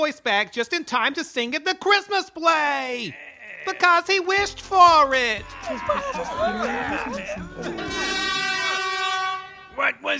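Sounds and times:
speech: 0:00.0 - 0:08.3, 0:09.8 - 0:10.1
laughter: 0:03.1 - 0:09.1
air horn blast: 0:07.7 - 0:09.9.

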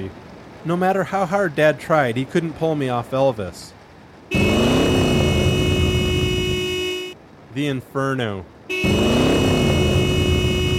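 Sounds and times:
speech: 0:00.0 - 0:04.4, 0:07.6 - 0:09.4
car engine revving: 0:04.3 - 0:07.2, 0:08.7 - 0:10.7.

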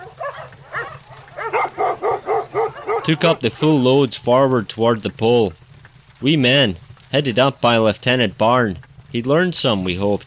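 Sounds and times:
dogs barking: 0:00.0 - 0:03.6
speech: 0:03.1 - 0:05.6, 0:06.2 - 0:10.2.

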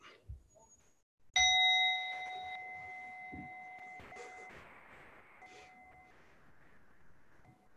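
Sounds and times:
bell being struck and ringing: 0:01.4 - 0:04.5.

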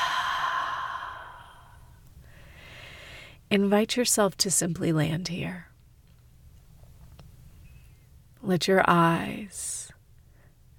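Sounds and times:
deep exhale as a long breathy sigh: 0:00.0 - 0:03.2
speech: 0:03.5 - 0:05.7, 0:08.5 - 0:09.8.

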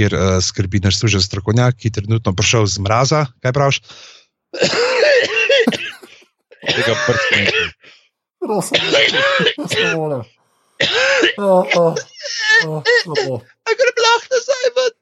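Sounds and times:
speech: 0:00.0 - 0:05.8, 0:06.6 - 0:15.0
person clearing throat: 0:04.6 - 0:07.8, 0:08.4 - 0:10.2, 0:10.8 - 0:13.4
person coughing: 0:04.6 - 0:07.8, 0:08.6 - 0:10.2, 0:10.8 - 0:13.4.

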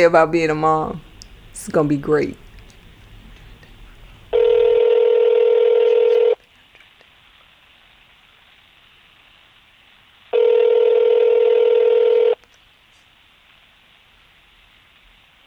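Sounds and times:
speech: 0:00.0 - 0:02.4
telephone call ringback tones, unanswered: 0:04.2 - 0:06.4, 0:10.4 - 0:12.4.

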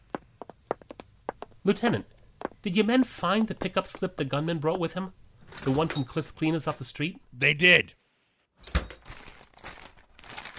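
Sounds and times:
speech: 0:01.6 - 0:08.0
plastic bag crinkling: 0:09.0 - 0:10.5.

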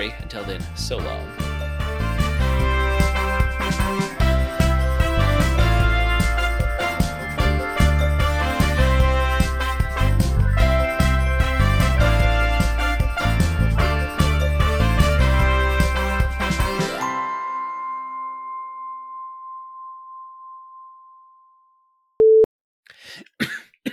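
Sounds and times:
speech: 0:00.0 - 0:01.4
musical outro: 0:00.0 - 0:17.5
long ringing tone: 0:17.1 - 0:22.1
brief beep: 0:22.2 - 0:22.5
person coughing into the microphone: 0:23.0 - 0:23.9.

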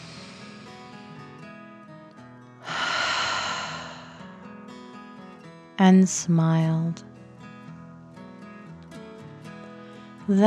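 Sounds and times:
long deep breath: 0:00.0 - 0:01.2, 0:02.6 - 0:04.4
speech: 0:05.8 - 0:07.1, 0:10.3 - 0:10.4.

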